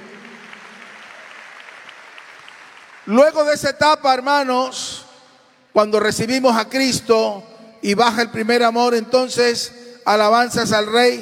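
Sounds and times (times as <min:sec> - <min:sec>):
church congregation applauding during a service: 0:00.0 - 0:03.8
speech: 0:03.0 - 0:05.0, 0:05.8 - 0:11.2.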